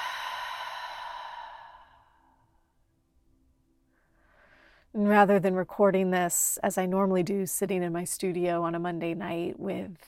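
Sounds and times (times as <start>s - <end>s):
deep slow breath in and out during a guided meditation: 0.0s - 2.7s, 3.9s - 4.9s
speech: 5.0s - 10.0s.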